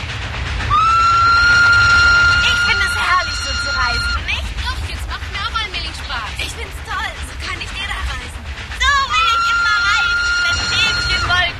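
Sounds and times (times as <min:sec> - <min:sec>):
train rumbling on rails: 0:00.0 - 0:11.5
sustained high whistle: 0:00.7 - 0:04.3, 0:08.8 - 0:11.5.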